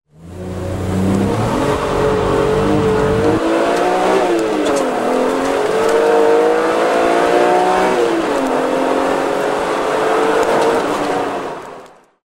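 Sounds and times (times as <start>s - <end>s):
BMW M Roadster: 0.1s - 12.2s.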